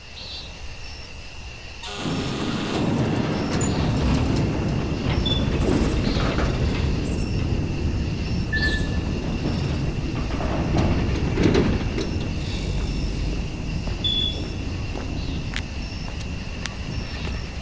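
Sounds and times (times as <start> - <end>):
faint high squeals and clanks of a prison door: 1.8 - 15.5
heavy prison door sliding open with a metallic rumble: 1.8 - 17.6.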